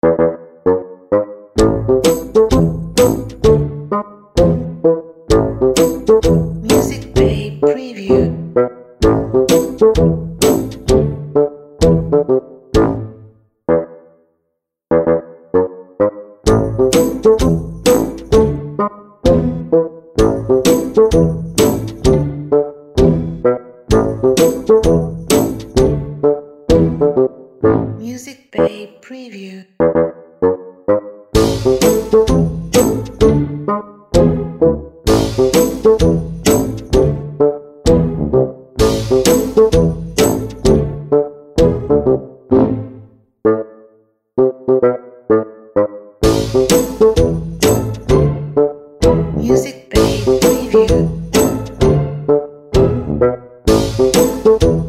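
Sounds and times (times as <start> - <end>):
funny bassoon comedy music: 0.0 - 14.1, 14.9 - 29.0, 29.8 - 54.8.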